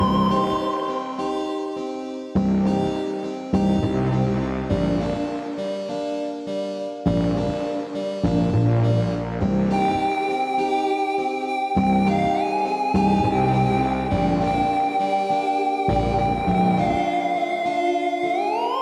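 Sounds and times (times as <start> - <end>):
eight-bar music loop without drums: 0.0 - 18.8.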